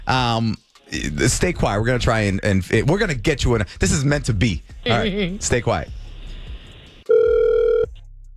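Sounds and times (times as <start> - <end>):
speech: 0.1 - 6.0
buzzy electronic phone ring tone: 7.1 - 7.9.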